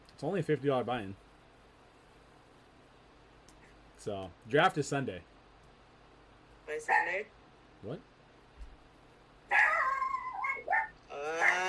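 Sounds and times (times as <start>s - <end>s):
speech: 0.2s - 1.3s, 4.0s - 5.3s, 6.7s - 8.1s
dog giving drawn-out whiny barks: 9.5s - 11.6s.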